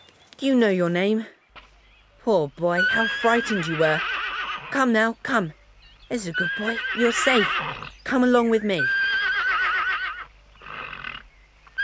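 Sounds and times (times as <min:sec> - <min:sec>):
speech: 0:00.4 - 0:01.4, 0:02.2 - 0:04.1, 0:04.7 - 0:09.0
horse whinnying: 0:02.7 - 0:04.8, 0:06.3 - 0:08.0, 0:08.8 - 0:11.8.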